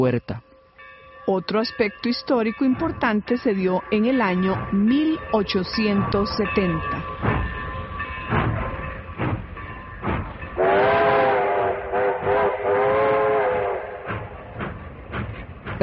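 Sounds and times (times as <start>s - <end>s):
speech: 0.0s - 0.5s, 1.3s - 7.2s
steam train chugging: 1.6s - 15.8s
steam train harmonic whistle: 10.6s - 14.3s.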